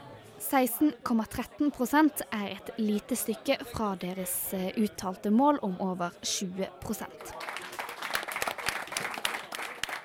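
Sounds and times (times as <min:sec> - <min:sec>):
speech: 0:00.5 - 0:07.5
crowd applauding a rise in vote share in election results: 0:07.2 - 0:10.0
mild cheering: 0:07.3 - 0:10.0.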